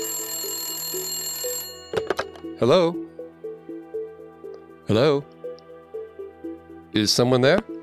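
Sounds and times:
landline telephone ringing with electronic trill: 0:00.0 - 0:02.8
speech: 0:02.6 - 0:03.1, 0:04.9 - 0:05.4, 0:06.9 - 0:07.7.

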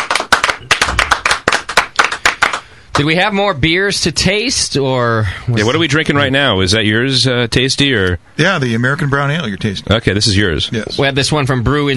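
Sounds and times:
crowd applauding: 0:00.0 - 0:02.7
speech: 0:03.0 - 0:11.9.

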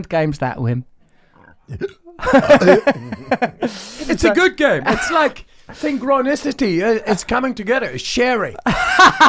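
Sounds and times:
speech: 0:00.0 - 0:00.9, 0:01.7 - 0:09.2
loud drawn-out burp into the microphone: 0:01.4 - 0:03.0
laughter: 0:01.7 - 0:06.3, 0:08.6 - 0:09.2.

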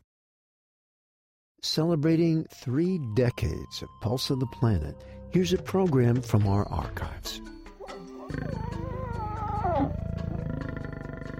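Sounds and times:
speech: 0:01.6 - 0:07.5
African lion roaring: 0:08.3 - 0:11.3.

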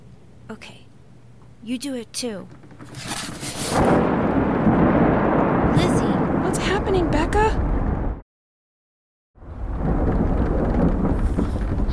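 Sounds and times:
speech: 0:00.5 - 0:00.8, 0:01.6 - 0:03.1
deep rolling thunder: 0:03.6 - 0:08.2, 0:09.4 - 0:11.9
heavy rain: 0:03.8 - 0:08.2, 0:09.4 - 0:11.9.

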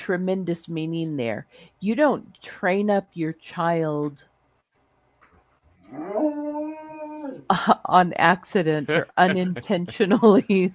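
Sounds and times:
speech: 0:00.0 - 0:04.3, 0:05.9 - 0:06.6, 0:07.2 - 0:10.7
riled-up dog howling in a drawn-out tonal whine: 0:05.9 - 0:07.4
laughter: 0:08.6 - 0:10.7.

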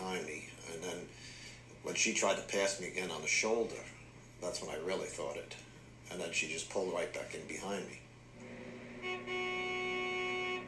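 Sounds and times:
speech: 0:02.0 - 0:08.5
car horn honking at a thruway rest area exit: 0:08.4 - 0:10.6.

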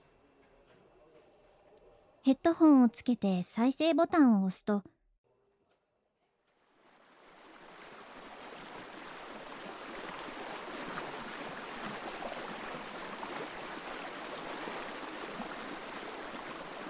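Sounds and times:
speech: 0:02.2 - 0:04.9
babbling river stream: 0:07.3 - 0:16.8.

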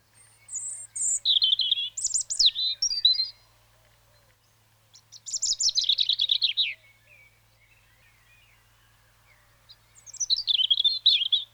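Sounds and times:
European robin song in clear warbling phrases: 0:00.0 - 0:03.5, 0:04.9 - 0:11.5.

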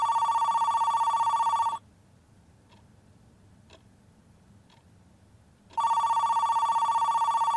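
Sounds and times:
telephone ringing: 0:00.0 - 0:01.8, 0:05.8 - 0:07.5.

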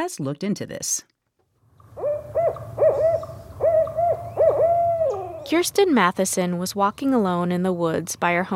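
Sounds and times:
speech: 0:00.0 - 0:01.2, 0:05.5 - 0:08.5
owl hooting: 0:01.8 - 0:05.7.

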